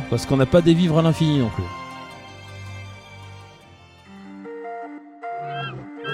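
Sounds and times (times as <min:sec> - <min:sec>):
speech: 0:00.1 - 0:01.8
creature squawking in shrill honking calls: 0:05.4 - 0:06.1.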